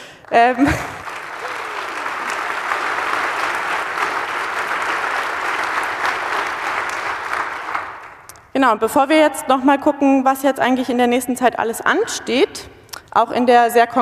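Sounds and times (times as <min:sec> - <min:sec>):
audience applause at a conference: 0:00.0 - 0:08.3
speech: 0:00.4 - 0:01.0, 0:08.6 - 0:14.0.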